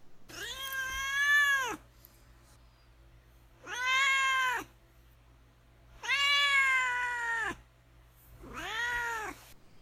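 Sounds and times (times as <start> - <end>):
low steady hum: 0.0 - 9.8
cat meowing in long wailing calls: 0.3 - 1.8, 3.6 - 4.7, 6.0 - 7.6, 8.4 - 9.4.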